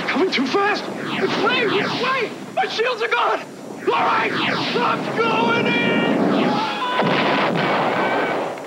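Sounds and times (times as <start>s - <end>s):
speech: 0.2s - 6.0s
sharp electronic zaps: 0.5s - 7.7s
space-combat arcade video game explosive booms: 0.5s - 8.5s
space-combat arcade video game electronic blasts: 0.6s - 3.0s, 3.8s - 7.9s.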